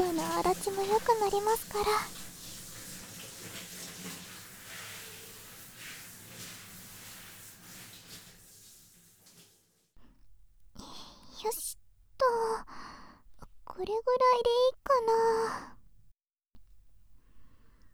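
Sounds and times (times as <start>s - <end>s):
short rustling bursts: 0.0s - 9.6s
hot water rinsing through hair: 0.0s - 9.8s
speech: 0.2s - 2.2s, 13.8s - 15.7s.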